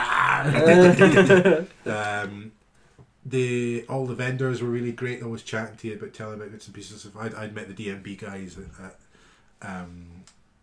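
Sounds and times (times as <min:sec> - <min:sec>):
person imitating a roar: 0:00.0 - 0:01.1
laughter: 0:00.0 - 0:02.1
speech: 0:00.4 - 0:02.6, 0:03.2 - 0:09.0, 0:09.6 - 0:10.4.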